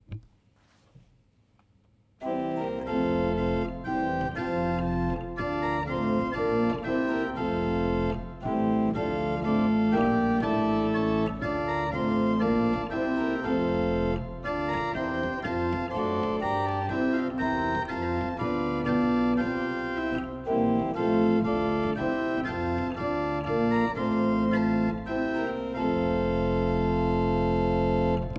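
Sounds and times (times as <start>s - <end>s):
pipe organ playing: 2.2s - 28.3s.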